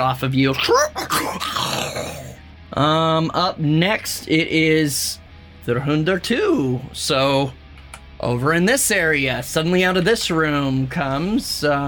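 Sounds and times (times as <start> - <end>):
speech: 0.0 - 7.6, 8.2 - 11.8
dog growling and yipping: 0.6 - 2.4.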